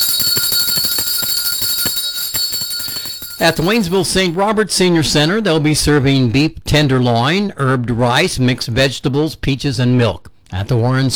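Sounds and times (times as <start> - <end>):
lunch bell ringing: 0.0 - 4.4
speech: 3.4 - 11.1.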